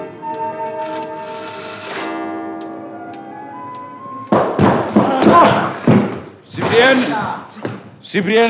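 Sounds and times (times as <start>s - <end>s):
door being battered down with heavy splintering blows: 4.3s - 7.0s
speech: 8.1s - 8.4s.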